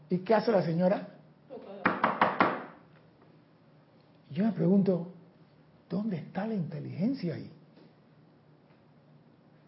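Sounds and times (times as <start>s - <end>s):
speech: 0.1s - 1.2s, 4.3s - 5.2s, 5.9s - 7.6s
knocking on a doctor's office door: 1.9s - 2.8s.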